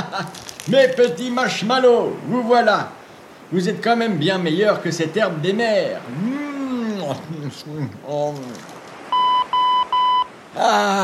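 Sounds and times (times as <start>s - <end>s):
speech: 0.1s - 6.4s, 7.1s - 8.7s, 10.6s - 11.0s
answering machine beeps: 9.1s - 10.3s.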